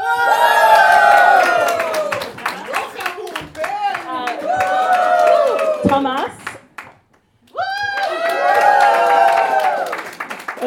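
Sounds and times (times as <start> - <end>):
audience cheering and shouting with whoops: 0.0 - 6.3, 7.5 - 10.0
scattered clapping: 0.4 - 10.6.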